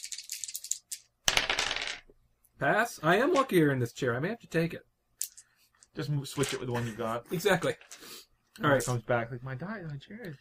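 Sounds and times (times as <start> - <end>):
two dice rolled on a table for a tabletop game horror check: 0.0 - 2.1
speech: 2.6 - 4.9, 6.0 - 10.4.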